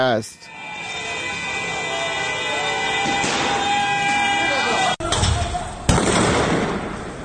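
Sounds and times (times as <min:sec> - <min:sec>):
speech: 0:00.0 - 0:00.6
outdoor voices and commotion of protesters in Sardasht: 0:00.0 - 0:05.9
gunshots fired by security forces at protesters in Sardasht: 0:03.0 - 0:03.7, 0:05.1 - 0:07.2.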